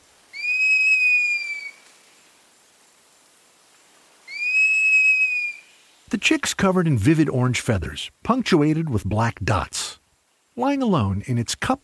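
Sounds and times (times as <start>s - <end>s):
Cinereous Mourner giving a long clear falling whistle: 0.3s - 1.8s, 4.3s - 5.7s
speech: 6.1s - 10.0s, 10.6s - 11.8s.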